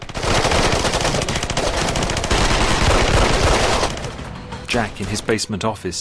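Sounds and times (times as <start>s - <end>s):
heavy automatic gunfire in a battle: 0.0s - 4.2s
speech: 4.7s - 5.9s.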